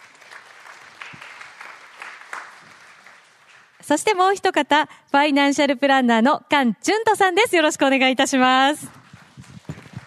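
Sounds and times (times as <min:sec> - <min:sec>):
audience applause welcoming an international technical analyst onto a special stage: 0:00.0 - 0:03.8, 0:08.9 - 0:10.0
speech: 0:03.9 - 0:09.0.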